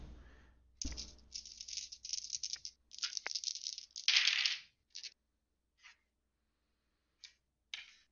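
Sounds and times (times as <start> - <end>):
dice clicking as they settle: 0.9 - 5.2
dice rolled on a hard table surface: 0.9 - 5.2, 7.3 - 8.1.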